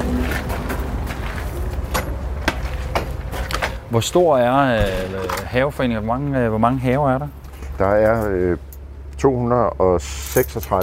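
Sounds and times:
steady low outdoor rumble: 0.0 - 10.8
speech: 3.9 - 10.8
door being shut: 4.7 - 5.5.

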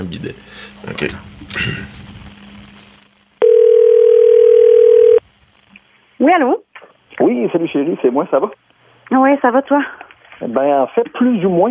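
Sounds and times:
faint noise: 0.0 - 11.7
speech: 0.2 - 2.1, 6.2 - 6.6, 7.2 - 11.7
telephone dial tone while placing a call: 3.4 - 5.2.

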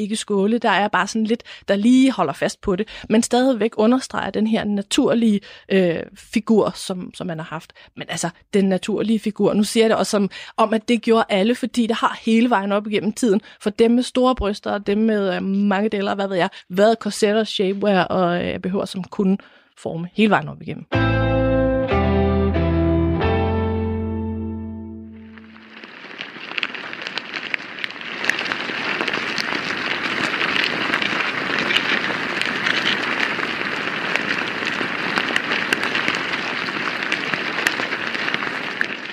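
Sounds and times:
speech: 0.0 - 21.5
tonal music: 20.9 - 25.4
ants moving inside an ant mound: 25.2 - 39.1.

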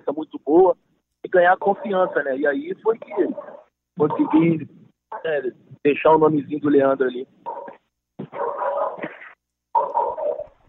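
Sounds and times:
speech: 0.5 - 7.4
dog barking: 1.8 - 2.4, 3.0 - 4.4, 7.4 - 10.5.

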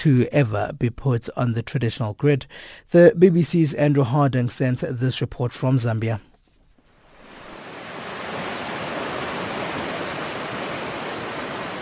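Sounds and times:
speech: 0.0 - 6.3
rushing swirling water of a flooded stream: 7.0 - 11.8.

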